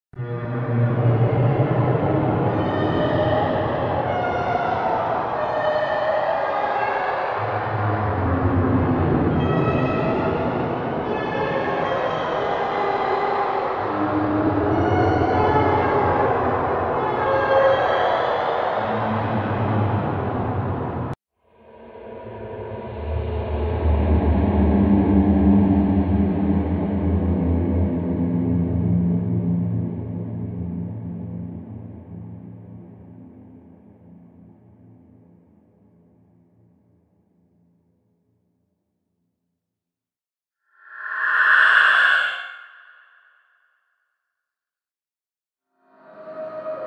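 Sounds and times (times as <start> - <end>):
scary horror sounds: 0.2 - 33.2, 40.8 - 43.3.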